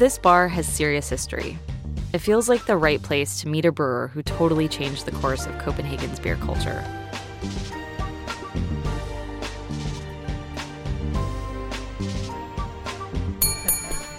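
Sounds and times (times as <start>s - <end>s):
speech: 0.0s - 7.6s
music in a Copenhagen bar: 0.0s - 14.1s
bright service bell dinging on a bar counter in a Copenhagen bar: 13.4s - 14.1s.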